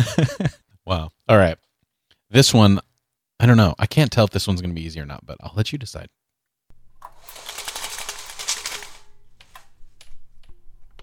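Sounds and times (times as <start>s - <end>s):
speech: 0.0s - 1.6s, 2.3s - 2.8s, 3.4s - 6.2s
window blinds being operated rattling: 7.0s - 9.7s.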